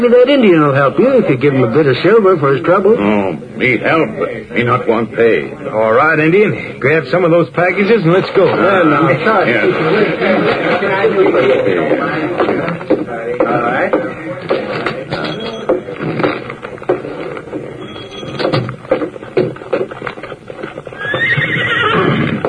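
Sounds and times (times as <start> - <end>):
speech: 0.0 - 14.0
hooves clip-clopping: 11.3 - 22.4
horses whinnying: 20.9 - 22.4.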